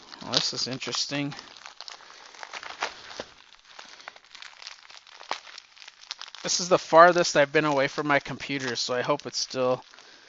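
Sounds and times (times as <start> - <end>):
magazine package paper torn open along its perforation: 0.0 - 10.2
speech: 0.4 - 1.6, 6.4 - 9.9.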